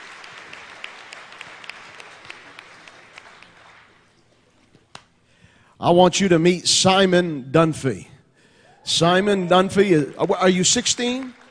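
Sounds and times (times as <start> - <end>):
crowd in a building applauding: 0.0 - 4.5, 8.9 - 11.5
speech: 5.8 - 8.1, 8.9 - 11.4.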